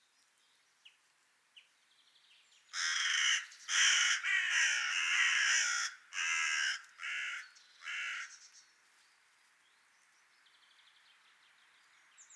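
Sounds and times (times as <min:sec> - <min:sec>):
Corvus corone carrion crow cawing: 0:02.8 - 0:08.4.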